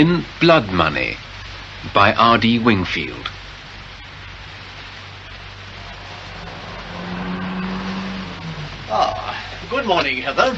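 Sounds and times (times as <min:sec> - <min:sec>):
speech: 0:00.0 - 0:03.4, 0:08.9 - 0:10.5
road rumble: 0:00.0 - 0:10.5
car engine driving past: 0:05.5 - 0:09.3.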